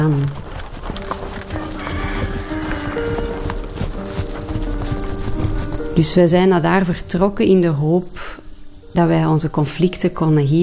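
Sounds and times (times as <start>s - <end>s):
speech: 0.0s - 0.6s, 6.0s - 10.6s
horse hooves clip-clopping at a walk: 0.0s - 7.4s
high insect chirr outdoors: 0.0s - 10.6s.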